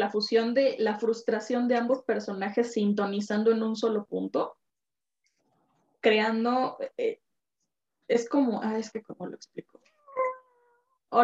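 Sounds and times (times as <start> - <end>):
speech: 0.0 - 4.6, 6.0 - 7.2, 8.1 - 9.8
cat meowing: 9.9 - 10.8.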